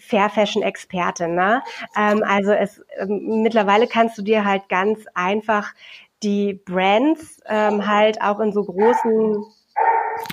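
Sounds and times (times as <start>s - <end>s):
speech: 0.1s - 9.6s
dog barking: 8.8s - 9.2s, 9.8s - 10.3s.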